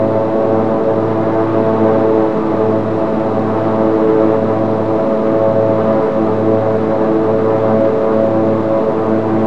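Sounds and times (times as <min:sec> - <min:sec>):
Beech 1900 aircraft engine with propeller at full pitch: 0:00.0 - 0:09.4.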